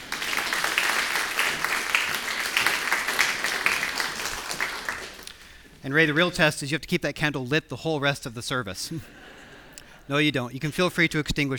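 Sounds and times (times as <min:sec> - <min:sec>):
roomful of people applauding: 0:00.0 - 0:05.8
speech: 0:05.8 - 0:09.2, 0:10.1 - 0:11.5.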